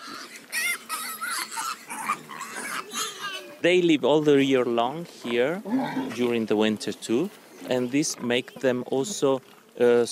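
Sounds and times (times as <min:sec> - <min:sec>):
pigs and piglets squealing and grunting in a forest: 0:00.0 - 0:03.6, 0:05.6 - 0:06.3
speech: 0:03.6 - 0:10.1.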